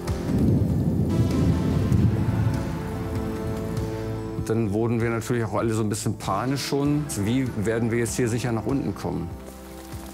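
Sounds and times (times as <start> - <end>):
heavy rain in the mountains: 0.0 - 4.4
deep rolling thunder in the mountains: 0.1 - 3.6
speech: 4.5 - 9.4.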